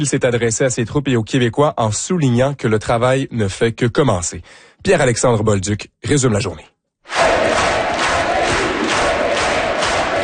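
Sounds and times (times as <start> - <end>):
speech: 0.0 - 7.2
packed crowd cheering in a hall as the premier-designate enters: 7.1 - 10.2.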